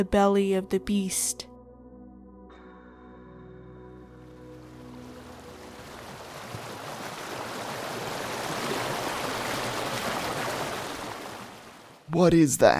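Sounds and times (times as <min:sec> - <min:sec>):
speech: 0:00.0 - 0:01.5, 0:12.1 - 0:12.7
waterfall rushing water: 0:04.5 - 0:12.0.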